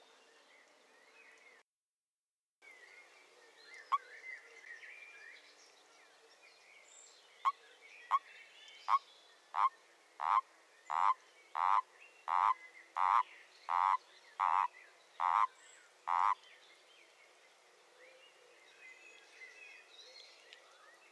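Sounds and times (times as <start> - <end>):
common toad croaking: 9.6 - 15.5, 16.1 - 16.4.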